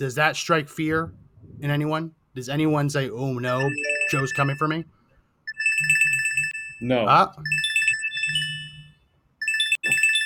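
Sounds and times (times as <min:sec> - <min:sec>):
speech: 0:00.0 - 0:05.0, 0:06.8 - 0:07.6
phone ringtone with a bright electronic melody of repeating tones: 0:03.5 - 0:04.8, 0:05.5 - 0:06.8, 0:07.5 - 0:10.2.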